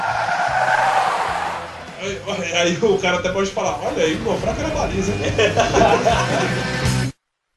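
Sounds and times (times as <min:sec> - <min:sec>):
car tires skidding and screeching: 0:00.0 - 0:02.3
speech: 0:02.2 - 0:06.8
laughter: 0:05.0 - 0:06.9.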